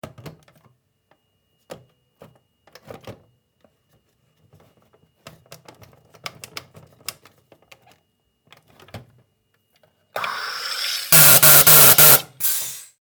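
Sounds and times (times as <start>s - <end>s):
soda vending machine: 10.2s - 12.9s.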